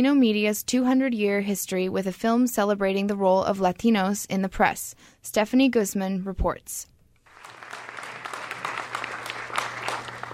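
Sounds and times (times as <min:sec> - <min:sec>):
speech: 0:00.0 - 0:06.9
packed auditorium audience applauding: 0:07.3 - 0:10.3.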